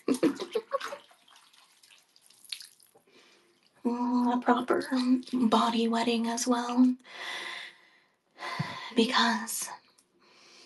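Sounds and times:
low water sloshing and splashing in a bathtub: 0.0s - 6.5s
water trickling and dripping: 0.2s - 5.8s
speech: 3.9s - 7.4s, 9.0s - 9.8s.

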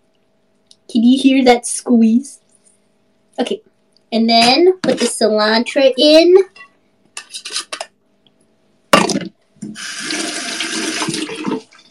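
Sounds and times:
speech: 0.9s - 2.4s, 3.4s - 6.7s
water running from a tap while washing hands: 9.6s - 11.8s.

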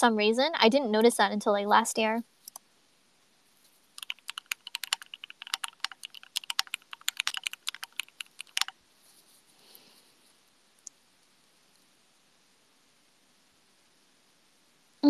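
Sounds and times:
speech: 0.0s - 2.3s
typing on a computer keyboard: 4.0s - 8.8s.

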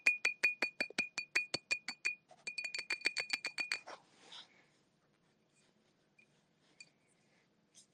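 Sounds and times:
glass bottle tapped in bright clinks: 0.0s - 3.9s.

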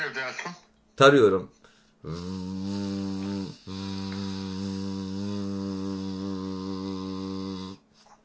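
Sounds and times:
speech: 0.0s - 4.0s
man snoring: 2.0s - 7.9s.

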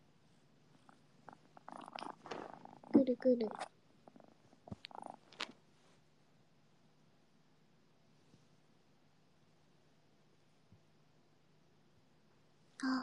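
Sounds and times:
cat purring: 0.2s - 5.9s
rustles of movement: 0.4s - 3.7s, 4.4s - 6.1s
speech: 3.1s - 3.7s.

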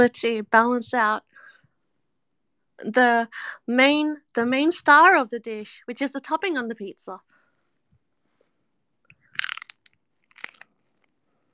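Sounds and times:
speech: 0.0s - 1.3s, 2.8s - 7.3s
crisp crunching bites into food: 9.1s - 11.4s.

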